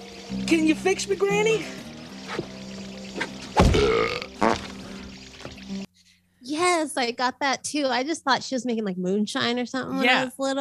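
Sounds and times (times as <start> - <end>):
speech: 0.3 - 2.5, 6.8 - 10.6
person burping: 3.6 - 4.8.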